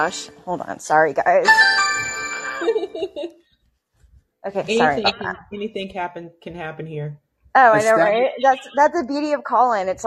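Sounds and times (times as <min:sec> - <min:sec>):
speech: 0:00.0 - 0:03.4, 0:04.4 - 0:10.0
electronic doorbell chime ringing: 0:01.5 - 0:02.8
laughter: 0:02.5 - 0:03.4, 0:04.8 - 0:05.3.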